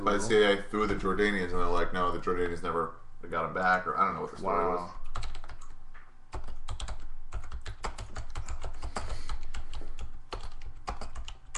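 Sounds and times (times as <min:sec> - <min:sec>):
speech: 0:00.0 - 0:05.3
rapid typing on a computer keyboard: 0:05.0 - 0:11.5.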